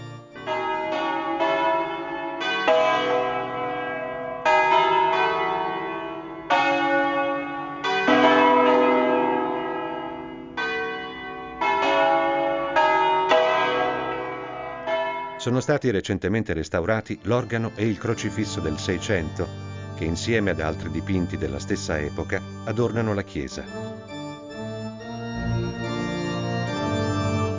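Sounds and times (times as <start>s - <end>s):
peal of church bells ringing: 0.0s - 15.8s, 17.0s - 27.5s
speech: 15.4s - 24.2s.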